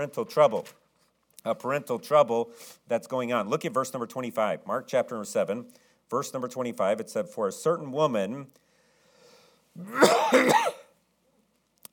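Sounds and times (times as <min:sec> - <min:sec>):
speech: 0:00.0 - 0:00.8, 0:01.4 - 0:08.6, 0:09.8 - 0:10.8
raspy voiced cough: 0:09.8 - 0:10.9.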